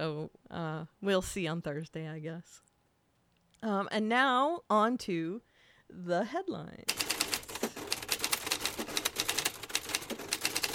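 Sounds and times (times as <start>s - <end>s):
speech: 0.0s - 2.7s, 3.6s - 7.1s
old manual typewriter clacking: 6.9s - 10.7s.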